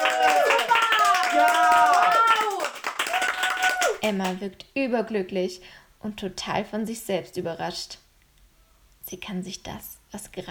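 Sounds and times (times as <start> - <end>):
audience cheering and whooping: 0.0 - 4.4
audience clapping: 0.0 - 4.4
speech: 4.0 - 8.0, 9.1 - 10.4.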